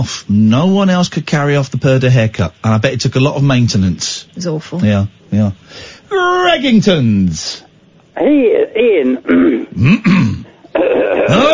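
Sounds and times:
speech: 0.0s - 11.5s
person clearing throat: 9.2s - 11.5s.

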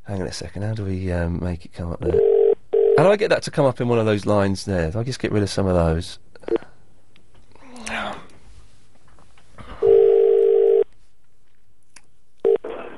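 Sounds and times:
speech: 0.1s - 2.4s, 3.0s - 6.2s
telephone dial tone: 2.1s - 3.0s, 9.8s - 10.8s, 12.4s - 12.6s.

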